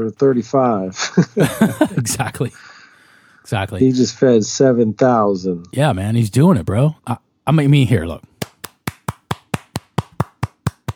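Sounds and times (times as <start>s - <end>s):
speech: 0.0s - 2.7s, 3.4s - 8.3s
laughter: 1.0s - 2.5s
person clapping hands: 8.3s - 10.9s.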